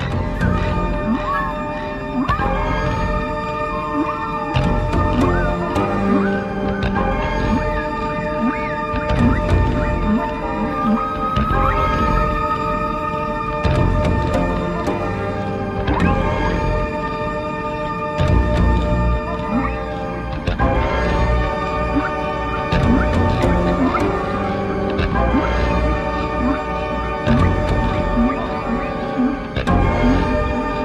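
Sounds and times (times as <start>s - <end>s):
dense steady musical drone on a record: 0.0s - 30.8s
recorded higher dolphin whistles and calls: 0.3s - 2.5s, 8.4s - 12.8s.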